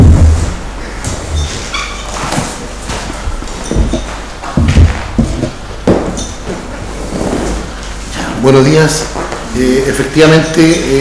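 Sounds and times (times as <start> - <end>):
dull low thumps of a chair being set down: 0.0 - 1.7, 2.4 - 6.6
chair being dragged: 0.0 - 8.2
steady noise: 0.0 - 10.9
speech: 8.5 - 10.9.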